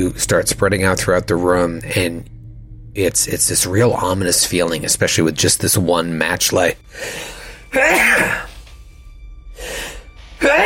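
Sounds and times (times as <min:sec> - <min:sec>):
speech: 0:00.1 - 0:02.4, 0:03.0 - 0:08.5
person sneezing: 0:07.7 - 0:08.6, 0:10.4 - 0:10.6.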